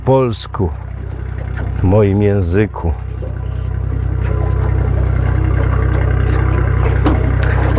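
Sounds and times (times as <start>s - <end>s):
small aluminium boat engine idling: 0.0s - 7.7s
speech: 0.1s - 0.8s, 1.8s - 3.0s
clatters and knocks of casting off a boat from its mooring: 0.8s - 1.9s, 3.2s - 7.7s.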